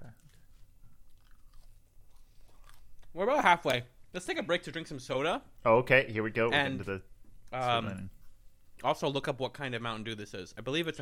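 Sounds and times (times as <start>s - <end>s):
biting and chewing of crustless food: 0.0s - 3.2s
speech: 3.2s - 8.2s, 8.8s - 11.0s.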